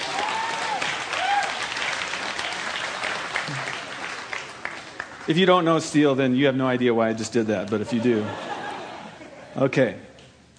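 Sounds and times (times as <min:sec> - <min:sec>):
faint whoops: 0:00.0 - 0:01.7
crowd applauding: 0:00.0 - 0:05.8
speech: 0:05.3 - 0:08.5, 0:09.6 - 0:10.1
laughter: 0:07.8 - 0:09.7.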